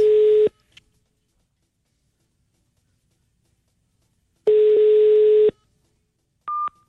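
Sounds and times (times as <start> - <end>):
telephone busy tone beeps as a phone call is rejected: 0.0 - 0.5, 4.5 - 5.6, 6.5 - 6.8.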